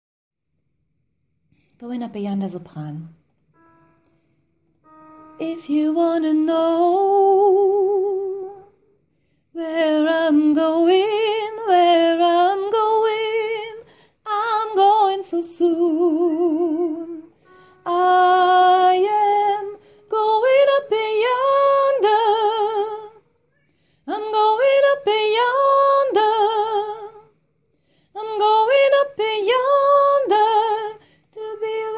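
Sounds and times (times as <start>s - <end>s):
soprano singing with gospel choir: 4.8s - 8.8s, 9.5s - 23.3s, 24.0s - 27.4s, 28.1s - 31.9s.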